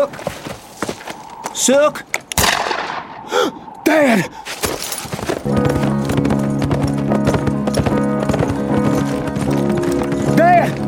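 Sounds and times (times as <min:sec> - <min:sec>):
horse hooves clip-clopping as it is led: 0:00.0 - 0:01.5, 0:04.5 - 0:10.8
speech: 0:01.6 - 0:02.1, 0:03.4 - 0:04.5.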